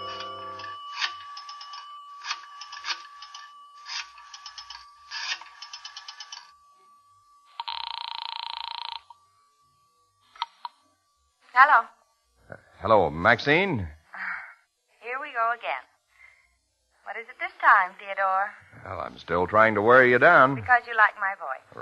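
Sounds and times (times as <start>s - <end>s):
telephone bell ringing in a phone booth in a residential hotel lobby: 0.0s - 9.2s
harsh buzzing telephone tone: 0.0s - 13.8s
faint steady hum: 0.0s - 21.7s
speech: 11.6s - 14.0s, 17.6s - 21.7s.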